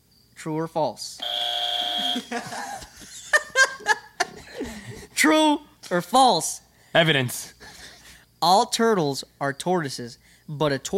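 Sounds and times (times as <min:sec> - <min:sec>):
speech: 0:00.4 - 0:01.3, 0:02.0 - 0:03.1, 0:04.6 - 0:07.6, 0:08.4 - 0:10.9
steady high beep: 0:01.2 - 0:02.3
short bright electronic game buzzer tones during a true-or-false quiz: 0:01.2 - 0:02.4
people laughing and chuckling: 0:02.0 - 0:05.2.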